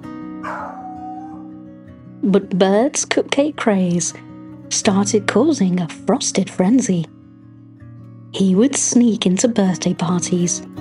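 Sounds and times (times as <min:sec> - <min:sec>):
steady musical backdrop: 0:00.0 - 0:10.7
dog howling as if singing: 0:00.4 - 0:01.6
speech: 0:02.2 - 0:07.1, 0:08.4 - 0:10.7.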